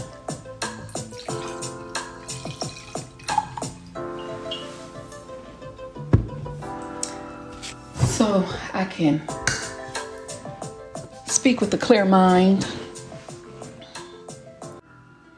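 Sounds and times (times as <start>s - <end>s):
liquid glugging and splashing into a glass: 1.0s - 4.0s
speech: 8.2s - 9.4s, 11.4s - 12.8s.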